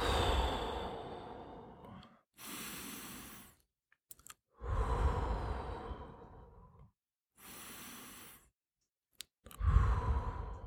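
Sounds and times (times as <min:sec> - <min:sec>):
deep deliberate breathing taken to calm and focus: 0:00.0 - 0:03.6, 0:04.6 - 0:08.5, 0:09.5 - 0:10.6.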